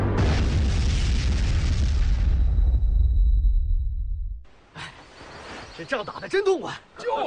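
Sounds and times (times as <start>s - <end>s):
explosion of an ammunition depot blown up during a battle: 0.2s - 4.3s
speech: 5.8s - 7.2s.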